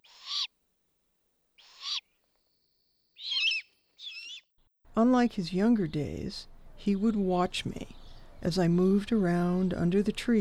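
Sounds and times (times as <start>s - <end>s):
owl giving raspy hissing cries: 0.0s - 0.5s, 1.6s - 2.1s, 3.2s - 4.4s
speech: 5.0s - 10.3s.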